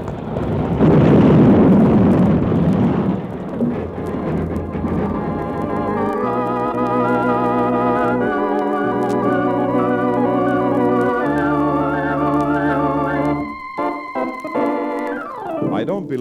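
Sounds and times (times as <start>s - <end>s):
train engine crashing into the back of a work train: 0.0s - 16.1s
sustained ringing tones: 3.7s - 15.9s.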